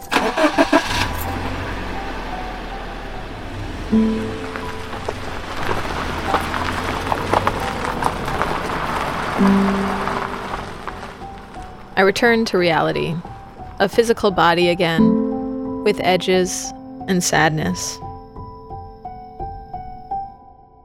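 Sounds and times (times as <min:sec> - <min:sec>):
Toyota Corolla car engine starting and driving: 0:00.0 - 0:19.2
rain patter: 0:02.1 - 0:14.0
speech: 0:03.9 - 0:04.2, 0:12.0 - 0:15.2, 0:15.8 - 0:18.0.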